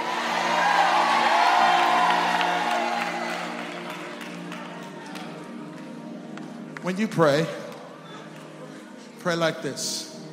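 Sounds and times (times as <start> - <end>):
audience shouting and cheering: 0.0 - 5.3
speech: 6.8 - 7.6, 9.2 - 10.1.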